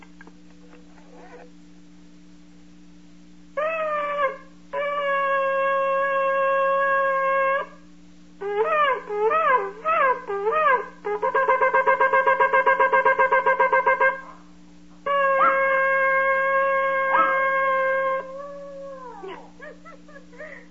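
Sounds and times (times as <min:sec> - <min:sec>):
low electrical hum: 0:00.0 - 0:20.6
dog howling: 0:03.6 - 0:07.8, 0:08.4 - 0:14.4, 0:15.0 - 0:20.6.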